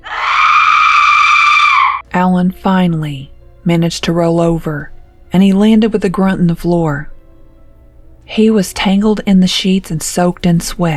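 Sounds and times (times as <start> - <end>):
woman's piercing wailing shriek: 0.0 - 2.0
speech: 2.2 - 7.1, 8.3 - 10.9.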